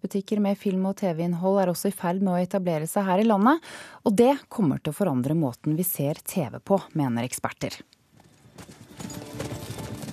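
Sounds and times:
speech: 0:00.1 - 0:07.9
horse hooves clip-clopping: 0:08.1 - 0:10.1.

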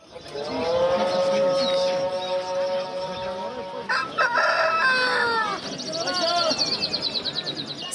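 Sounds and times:
birds chirping at a bird market: 0:00.0 - 0:07.9
faint voices at a bird market: 0:00.0 - 0:07.9
rooster crowing at a bird market: 0:03.8 - 0:05.6.

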